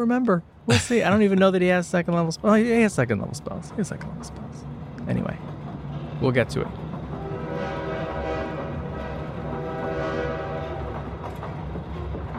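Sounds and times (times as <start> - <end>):
speech: 0.0 - 5.5, 6.2 - 6.8
rumble and rattle of a moving train: 0.0 - 12.3
train horn blaring: 7.1 - 11.3.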